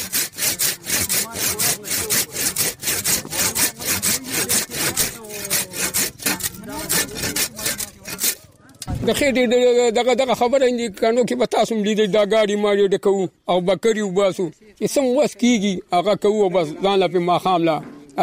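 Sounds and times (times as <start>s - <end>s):
hand saw cutting through branches of a wild tree: 0.0s - 8.5s
speech: 9.0s - 18.2s.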